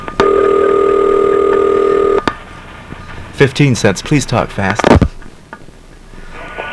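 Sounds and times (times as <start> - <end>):
loud steady telephone tone: 0.2 - 2.3
speech: 3.4 - 5.0.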